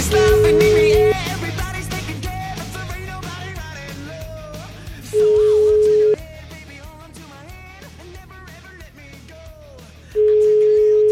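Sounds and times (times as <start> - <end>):
telephone line tones while a call is being placed: 0.1 - 1.2, 5.1 - 6.2, 10.2 - 11.1.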